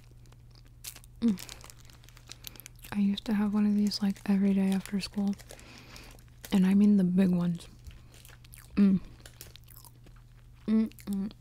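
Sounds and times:
person munching a crunchy snack: 0.0 - 6.9, 7.6 - 11.3
person humming satisfied murmurs: 1.2 - 1.5, 8.7 - 9.2, 10.6 - 11.3
speech: 1.2 - 1.5, 2.9 - 5.6, 6.5 - 7.8, 8.8 - 9.1, 10.7 - 11.3.

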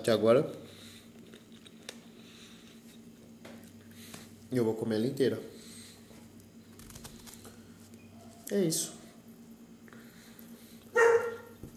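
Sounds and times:
speech: 0.0 - 0.7, 4.5 - 5.5, 8.5 - 9.0
dog barking: 10.9 - 11.5.

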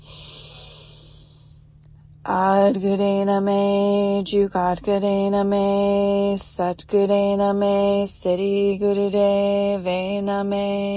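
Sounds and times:
deep inhale during a breathing meditation: 0.0 - 1.7
speech: 2.3 - 10.9.

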